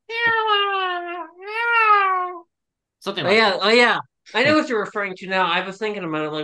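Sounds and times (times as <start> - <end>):
person imitating a bored high-pitched cat meow: 0.0 - 2.4
speech: 3.0 - 6.4.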